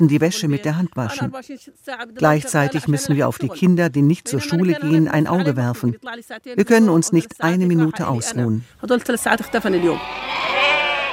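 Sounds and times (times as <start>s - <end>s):
speech: 0.0s - 10.6s
bleating of sheep and goats kept by a displaced family: 9.6s - 11.1s.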